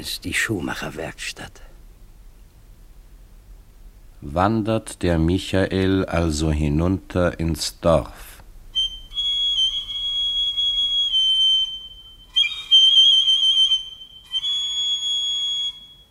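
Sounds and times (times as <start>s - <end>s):
speech: 0.0s - 1.7s, 4.2s - 8.3s
whistle blown in long high steady tones: 8.8s - 16.0s.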